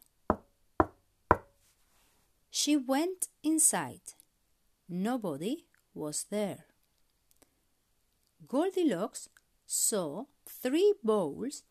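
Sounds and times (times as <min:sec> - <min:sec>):
knocking on a wooden door: 0:00.3 - 0:01.5
speech: 0:02.6 - 0:04.2, 0:04.9 - 0:06.7, 0:08.4 - 0:11.6.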